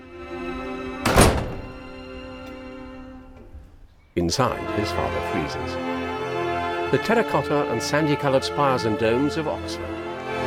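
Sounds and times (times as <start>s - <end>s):
house door thudding shut: 0.9s - 3.8s
speech: 4.2s - 6.0s, 6.9s - 10.0s.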